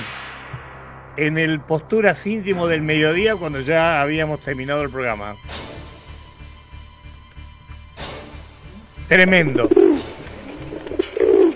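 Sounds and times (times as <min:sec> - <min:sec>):
speech: 0:01.2 - 0:05.5, 0:09.1 - 0:10.1
pigeon cooing: 0:08.6 - 0:11.5.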